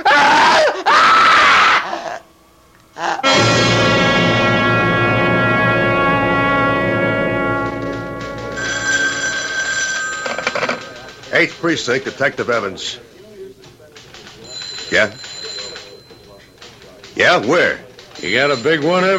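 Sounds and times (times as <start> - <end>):
woman screaming: 0.0 - 2.2
telephone bell ringing: 3.2 - 11.4, 14.4 - 16.9, 18.1 - 19.1
speech: 11.4 - 13.1, 14.9 - 15.3, 17.2 - 19.1.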